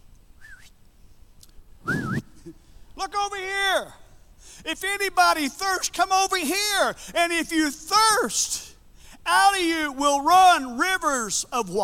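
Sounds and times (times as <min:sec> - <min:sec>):
man whistling during a sermon: 0:00.4 - 0:00.8, 0:01.8 - 0:02.5
speech: 0:04.6 - 0:08.7, 0:09.3 - 0:11.8.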